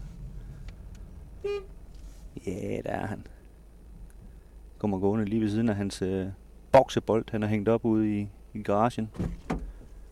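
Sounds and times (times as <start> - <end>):
idling vehicle rumble: 0.0 - 10.1
car horn honk in front of a house: 1.4 - 1.8
speech: 1.4 - 1.8, 2.4 - 3.4, 4.8 - 9.4.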